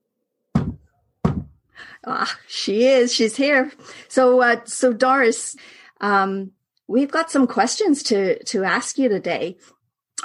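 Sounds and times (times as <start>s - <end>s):
knocks on a wooden surface during a spirit-channeling session: 0.6s - 1.6s
speech: 2.0s - 10.2s.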